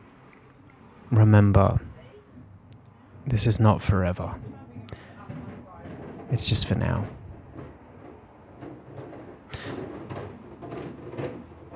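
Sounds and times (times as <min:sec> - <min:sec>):
speech: 0:01.1 - 0:01.9, 0:03.3 - 0:04.6, 0:06.3 - 0:07.2
outdoor rubbish bins being moved: 0:04.3 - 0:11.7.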